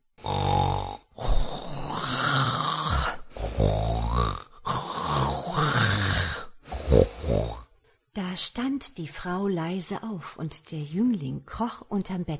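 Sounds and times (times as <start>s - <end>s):
person imitating an old man's low rough growl: 0.2s - 7.7s
person imitating an old man's throaty snores: 0.2s - 7.8s
speech: 8.4s - 12.3s.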